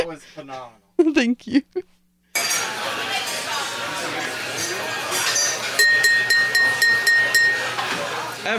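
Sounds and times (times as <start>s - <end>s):
speech: 0.0s - 2.0s
glasses clinking in a toast: 2.4s - 2.7s, 5.2s - 8.0s
murmur of crowd chatter: 2.4s - 8.5s.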